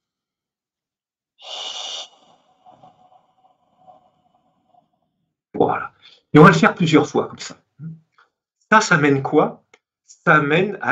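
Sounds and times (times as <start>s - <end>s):
deep breath drawn in sharply in a guided breathing exercise: 1.4s - 4.7s
speech: 5.6s - 7.9s, 8.7s - 9.6s, 10.2s - 10.9s.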